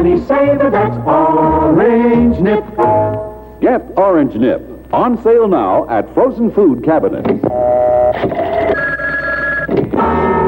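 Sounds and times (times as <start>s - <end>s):
speech: 0.0s - 8.8s
telephone ringing during outgoing call: 7.5s - 10.4s.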